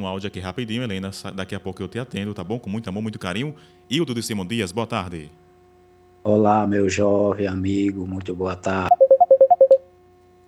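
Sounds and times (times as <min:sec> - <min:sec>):
speech: 0:00.0 - 0:05.4, 0:06.2 - 0:09.0
faint steady two-note hum: 0:08.9 - 0:09.8
telephone keypad tones on a phone-in call line: 0:08.9 - 0:09.8.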